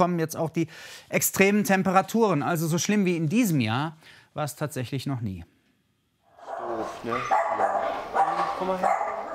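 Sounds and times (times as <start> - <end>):
speech: 0.0 - 5.5, 6.8 - 7.4, 8.6 - 9.0
old mixed-breed dog barking hoarsely: 6.4 - 9.3.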